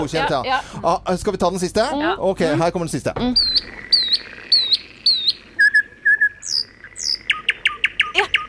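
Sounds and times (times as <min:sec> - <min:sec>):
speech: 0:00.0 - 0:04.3
common nightingale singing: 0:03.2 - 0:08.4.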